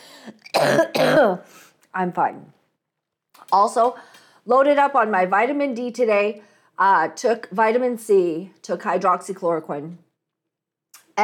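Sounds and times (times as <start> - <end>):
speech: 0.2 - 2.6, 3.5 - 10.0
harsh coughs: 0.3 - 1.5.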